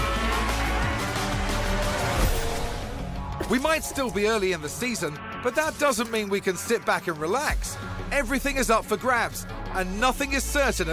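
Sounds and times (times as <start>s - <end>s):
two racing car engines roaring in a video game trailer: 0.0s - 10.9s
speech: 3.5s - 10.9s.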